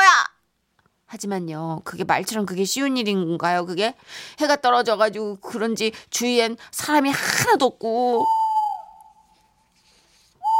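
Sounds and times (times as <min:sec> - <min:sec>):
speech: 0:01.1 - 0:08.4
owl hooting: 0:08.1 - 0:09.5.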